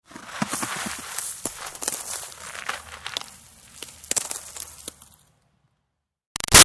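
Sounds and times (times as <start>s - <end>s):
snow dust and ice debris dropping: 0.1s - 5.3s.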